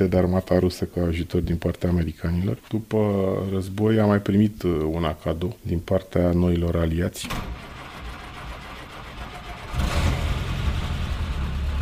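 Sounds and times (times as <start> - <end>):
speech: 0.0 - 7.6
jeep engine revving: 8.1 - 11.8.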